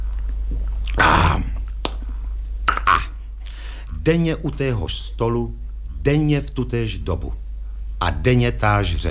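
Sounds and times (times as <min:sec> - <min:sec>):
low steady hum: 0:00.0 - 0:09.0
wet lip smacking after drinking: 0:00.2 - 0:03.6
speech: 0:04.0 - 0:07.4, 0:08.0 - 0:09.0.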